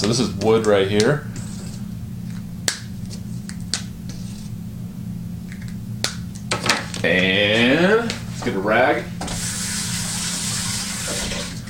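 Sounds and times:
speech: 0.0s - 1.3s, 7.0s - 9.1s
tap water running from a faucet into a sink: 10.0s - 11.6s.

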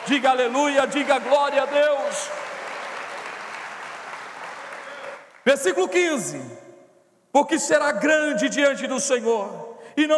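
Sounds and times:
audience applauding in a large gathering: 0.0s - 5.4s
speech: 0.1s - 2.5s, 5.5s - 6.6s, 7.3s - 10.1s.

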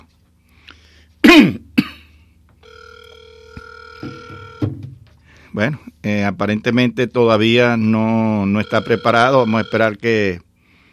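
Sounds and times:
person clearing throat: 1.2s - 2.2s
electronic ringback tone on a phone line: 2.6s - 4.8s, 8.4s - 10.0s
speech: 5.6s - 10.5s.

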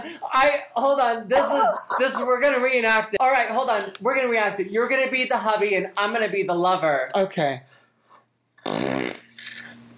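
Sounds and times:
speech: 0.1s - 7.8s
imitated fart noise made with the mouth: 8.6s - 9.8s.

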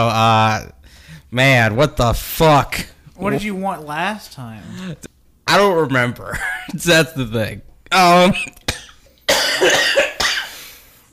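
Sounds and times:
speech: 0.0s - 8.6s, 9.6s - 10.1s
person coughing harshly: 8.2s - 10.7s.

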